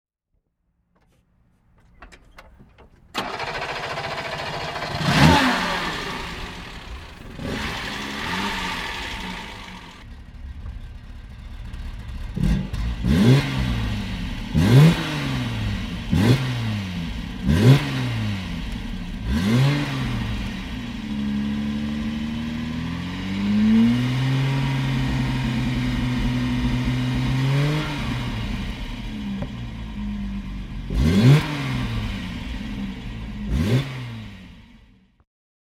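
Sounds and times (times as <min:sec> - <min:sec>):
1966 Fiat 2300 S Coupe engine: 0:00.8 - 0:35.2.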